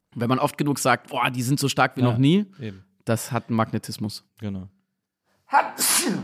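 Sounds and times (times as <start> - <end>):
speech: 0.2 - 4.8, 5.5 - 6.2
person sneezing: 5.6 - 6.2.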